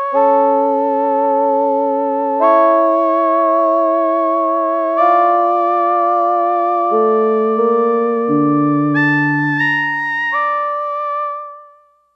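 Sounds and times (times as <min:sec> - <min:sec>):
Yamaha DX11 synthesizer factory preset voice: 0:00.2 - 0:11.5.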